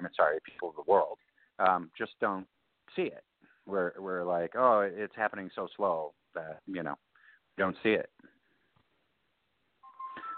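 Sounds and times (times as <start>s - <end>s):
speech: 0.1s - 8.3s
phone beeping with electronic tones for incoming calls: 9.8s - 10.3s.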